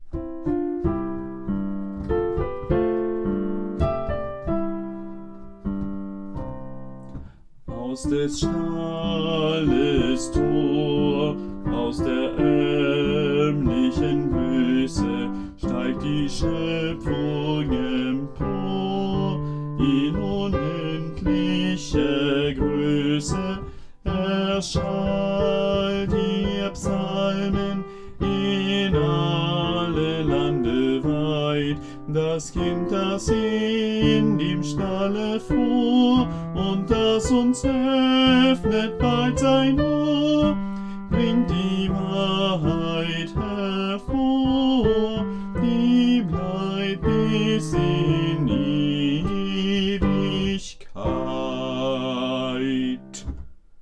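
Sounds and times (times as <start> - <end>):
alto voice singing advent music: 0.0 - 53.4.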